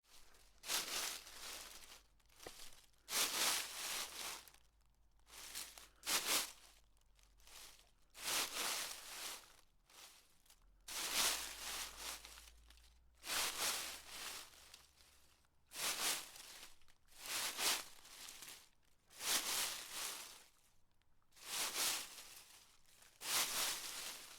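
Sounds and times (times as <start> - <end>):
leaves rustling: 0.1 - 4.6, 7.5 - 9.4, 10.9 - 12.5, 13.2 - 14.7, 15.7 - 16.6, 17.2 - 18.6, 19.2 - 20.5, 21.4 - 24.3.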